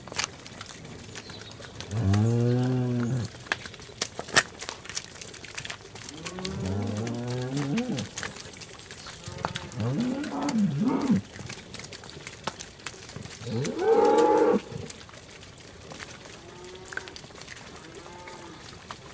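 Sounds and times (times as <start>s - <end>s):
cattle mooing in a muddy lane: 1.9s - 3.3s, 6.1s - 8.2s, 9.2s - 11.2s, 13.4s - 14.9s, 17.8s - 18.7s.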